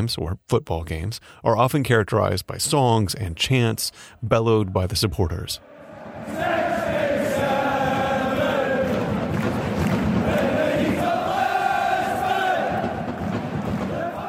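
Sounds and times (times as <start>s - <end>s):
speech: 0.0s - 6.9s
plastic vuvuzela horns droning over a soccer stadium crowd: 5.7s - 14.2s.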